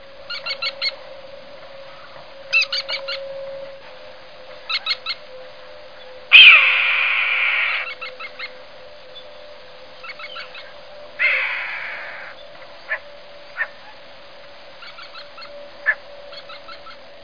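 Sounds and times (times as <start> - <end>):
American kestrel Falco sparverius calling: 0.3 - 1.0, 1.9 - 3.3, 4.6 - 5.3, 6.0 - 14.0, 14.8 - 17.1.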